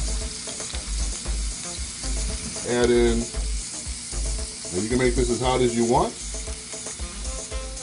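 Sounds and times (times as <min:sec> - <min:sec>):
garlic sizzling in a small pool of hot oil in a tilted pan: 0:00.0 - 0:07.8
speech: 0:02.7 - 0:03.4, 0:04.7 - 0:06.2.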